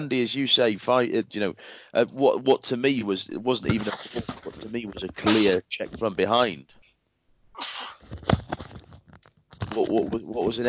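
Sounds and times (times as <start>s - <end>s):
speech: 0.0s - 6.9s, 9.8s - 10.6s
sneeze: 7.6s - 8.0s.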